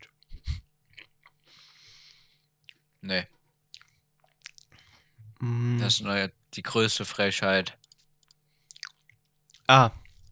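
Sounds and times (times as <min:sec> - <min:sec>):
biscuits being chewed and crunched: 0:00.0 - 0:01.6, 0:02.6 - 0:05.1, 0:07.8 - 0:10.3
speech: 0:03.0 - 0:03.4, 0:05.4 - 0:07.8, 0:09.7 - 0:10.0.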